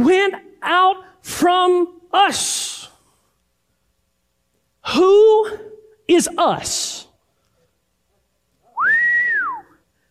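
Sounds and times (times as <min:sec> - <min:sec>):
speech: 0:00.0 - 0:02.8, 0:04.8 - 0:07.1
person whistling: 0:08.8 - 0:09.8.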